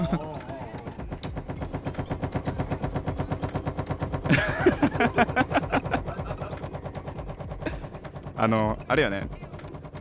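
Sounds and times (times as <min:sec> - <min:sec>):
laughter: 0:00.0 - 0:00.8, 0:04.3 - 0:06.9
washing machine drum tumbling laundry, rattling: 0:00.0 - 0:09.9
speech: 0:00.1 - 0:00.3, 0:08.4 - 0:09.4.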